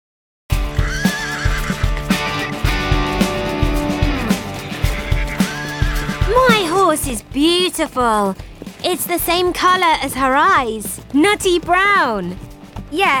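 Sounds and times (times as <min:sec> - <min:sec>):
horse hooves clip-clopping at a trot in the Black Hills: 0:00.6 - 0:13.1
horse whinnying in the Black Hills of South Dakota: 0:00.7 - 0:02.5, 0:04.1 - 0:07.0
speech: 0:07.1 - 0:13.1.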